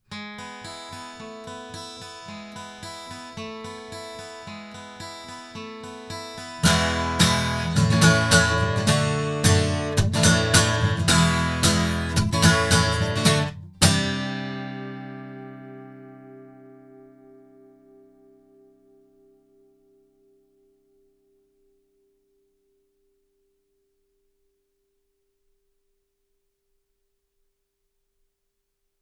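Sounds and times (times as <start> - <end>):
avant guitar: 0.0 - 22.4.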